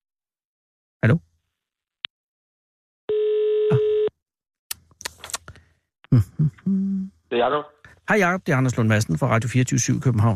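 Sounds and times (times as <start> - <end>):
speech: 1.0 - 1.3, 6.1 - 10.3
steady telephone dial tone: 3.1 - 4.1.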